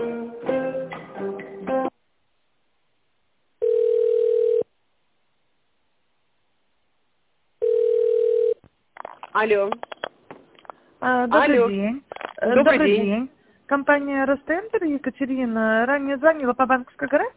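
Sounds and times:
short burst of telephone hold music during call transfer: 0:00.0 - 0:01.9
telephone ringing tone while a call is being transferred: 0:03.6 - 0:04.7, 0:07.6 - 0:08.6
speech: 0:09.4 - 0:09.9, 0:11.0 - 0:17.3.

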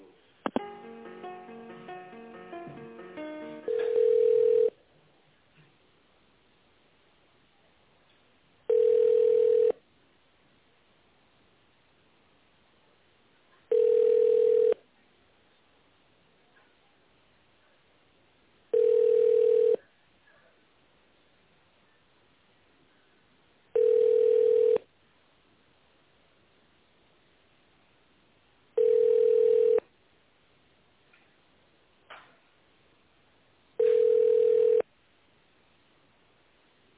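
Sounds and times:
telephone line hiss: 0:00.6 - 0:04.7, 0:08.7 - 0:09.8, 0:18.7 - 0:19.8, 0:23.8 - 0:24.8, 0:28.8 - 0:29.8, 0:33.8 - 0:34.8
jumble of telephone tones: 0:00.6 - 0:04.8, 0:08.7 - 0:09.8, 0:13.7 - 0:14.8, 0:18.8 - 0:19.8, 0:23.8 - 0:24.8, 0:28.8 - 0:29.8, 0:33.8 - 0:34.8
telephone line beeps during a call transfer: 0:03.7 - 0:04.7, 0:08.7 - 0:09.7, 0:13.7 - 0:14.8, 0:18.8 - 0:19.8, 0:23.8 - 0:24.8, 0:28.8 - 0:29.8, 0:33.8 - 0:34.8.

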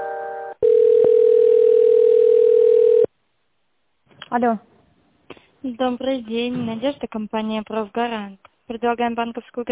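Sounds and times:
telephone line tone while a call is being transferred: 0:00.5 - 0:03.1
speech: 0:04.4 - 0:04.7, 0:05.7 - 0:09.7.

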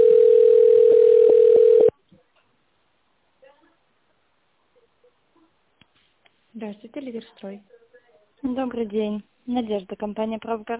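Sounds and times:
telephone line tone while a call is transferred to an administrator: 0:00.0 - 0:01.9
speech: 0:06.7 - 0:07.8, 0:08.4 - 0:10.7.

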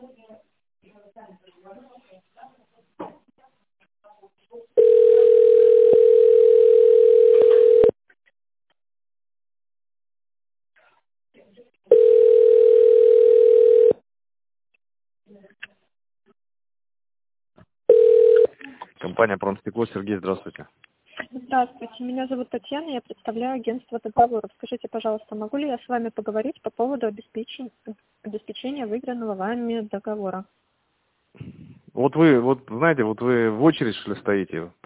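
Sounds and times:
steady loud telephone line tone: 0:04.8 - 0:08.0, 0:11.9 - 0:14.0, 0:17.9 - 0:18.5
speech: 0:19.2 - 0:20.9, 0:21.5 - 0:30.6, 0:31.4 - 0:34.8.

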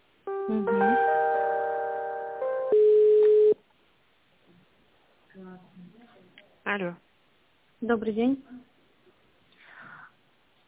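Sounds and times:
speech: 0:00.5 - 0:01.0, 0:06.8 - 0:07.0, 0:07.8 - 0:08.6
telephone line tones while a call is being transferred: 0:02.4 - 0:03.6.

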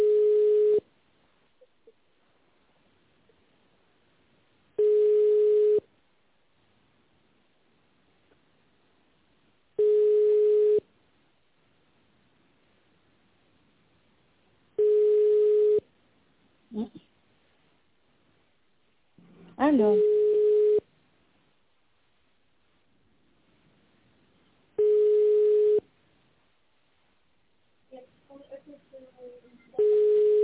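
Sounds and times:
telephone ringback tone while a call is forwarded to an operator: 0:00.0 - 0:00.8, 0:04.8 - 0:05.8, 0:09.8 - 0:10.8, 0:14.8 - 0:15.8, 0:19.9 - 0:20.8, 0:24.8 - 0:25.8, 0:29.8 - 0:30.4
speech: 0:19.7 - 0:20.1.

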